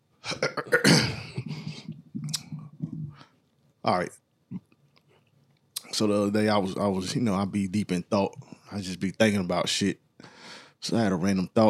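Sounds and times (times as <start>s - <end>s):
person clearing throat: 0.2s - 2.6s
speech: 3.9s - 4.2s, 6.0s - 10.0s, 10.8s - 11.6s.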